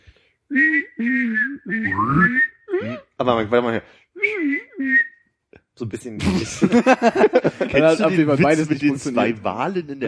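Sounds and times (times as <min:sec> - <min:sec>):
person whistling a high tone while humming lower notes, imitating robot beeps: 0:00.5 - 0:03.2, 0:04.2 - 0:05.2
speech: 0:03.2 - 0:04.1, 0:05.9 - 0:10.0
laughter: 0:06.2 - 0:09.4.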